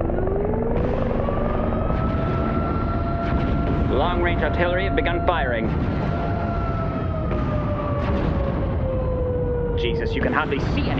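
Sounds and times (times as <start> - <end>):
helicopters flying overhead with rotor thrum: 0.0 - 10.9
speech: 4.2 - 6.2, 9.8 - 10.9.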